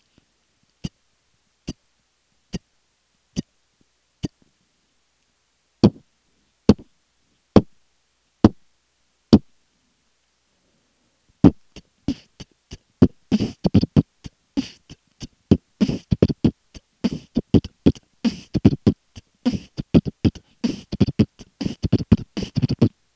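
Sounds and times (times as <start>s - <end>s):
beatbox dry short kick roll: 5.8s - 6.0s, 6.7s - 6.9s, 7.6s - 7.8s, 11.4s - 23.0s.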